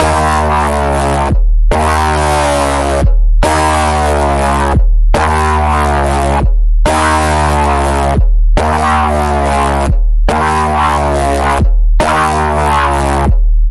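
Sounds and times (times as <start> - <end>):
pulse tone on D sharp: 0.0 - 13.4.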